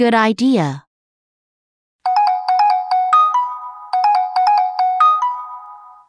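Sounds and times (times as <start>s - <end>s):
speech: 0.0s - 0.8s
cell phone ringtone ringing from under a chair: 2.0s - 6.0s.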